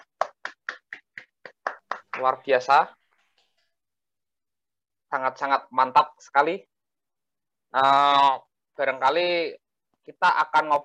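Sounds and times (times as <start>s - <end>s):
hands clapping in applause: 0.0s - 2.8s
speech: 2.2s - 3.0s, 5.1s - 6.7s, 7.7s - 10.8s.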